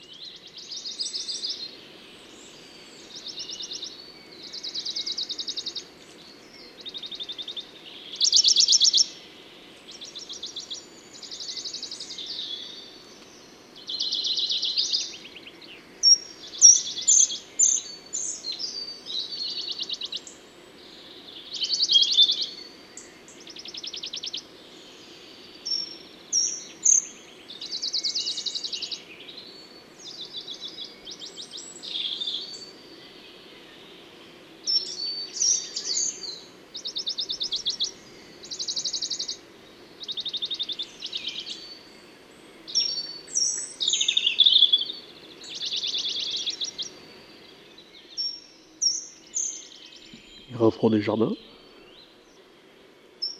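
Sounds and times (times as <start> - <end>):
Bonelli's warbler singing short dry trills: 0.0 - 53.3
speech: 50.8 - 51.4.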